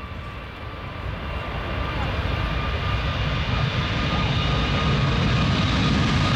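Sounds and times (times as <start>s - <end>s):
passenger airplane engine roar overhead: 0.0s - 6.3s.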